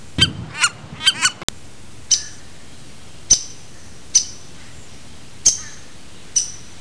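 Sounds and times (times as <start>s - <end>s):
downy woodpecker calls: 0.0s - 1.4s, 2.1s - 2.5s, 3.3s - 6.7s.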